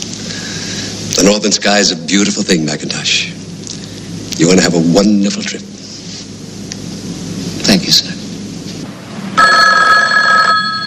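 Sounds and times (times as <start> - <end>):
speech: 1.2 - 3.4, 4.4 - 5.7, 7.9 - 8.1
telephone bell ringing on a desk in an office: 9.4 - 10.8.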